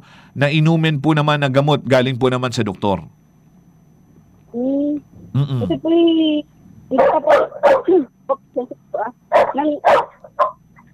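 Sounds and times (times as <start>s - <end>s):
speech: 0.0s - 3.2s, 4.5s - 10.6s
dog barking: 6.9s - 8.1s, 9.3s - 10.6s.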